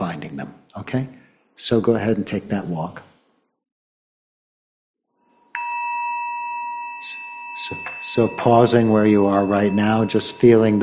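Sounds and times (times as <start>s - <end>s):
speech: 0.1s - 3.1s, 7.0s - 10.8s
bell struck to end walking period in meditation session: 5.5s - 10.8s.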